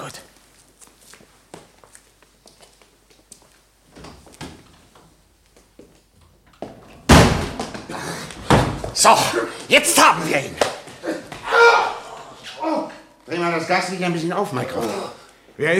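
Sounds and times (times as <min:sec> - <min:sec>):
footsteps: 0:00.0 - 0:09.7
door slamming shut: 0:07.0 - 0:08.9
speech: 0:09.0 - 0:10.7, 0:13.6 - 0:15.7.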